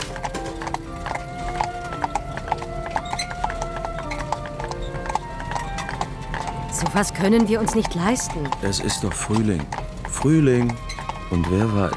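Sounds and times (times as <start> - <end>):
horse hooves clip-clopping pulling a carriage in a park in spring: 0.0 - 11.9
soft continuous rumble of a horse-drawn carriage: 0.0 - 11.9
speech: 6.9 - 11.9.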